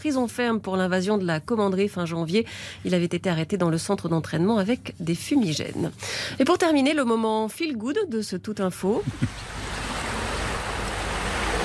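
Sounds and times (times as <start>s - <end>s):
speech: 0.0s - 9.5s
sea surf waves roaring: 9.2s - 11.6s.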